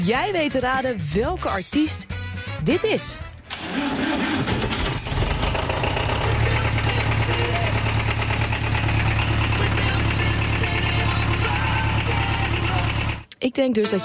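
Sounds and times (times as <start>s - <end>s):
speech: 0.0s - 4.0s, 13.4s - 14.0s
diesel tractor engine cranking and idling: 3.2s - 13.3s.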